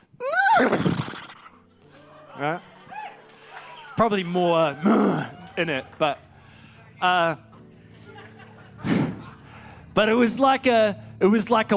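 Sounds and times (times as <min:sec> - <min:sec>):
person loudly imitating a stallion's neigh: 0:00.2 - 0:01.5
speech: 0:00.6 - 0:01.0, 0:02.4 - 0:02.7, 0:04.0 - 0:06.2, 0:07.0 - 0:07.5, 0:10.0 - 0:11.7
laughter: 0:00.7 - 0:06.5, 0:07.7 - 0:09.8.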